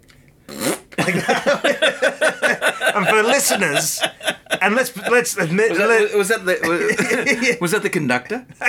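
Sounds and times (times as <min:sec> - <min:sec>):
voice imitating a fart: 0:00.5 - 0:01.0
laughter: 0:01.0 - 0:07.6
speech: 0:01.1 - 0:08.6.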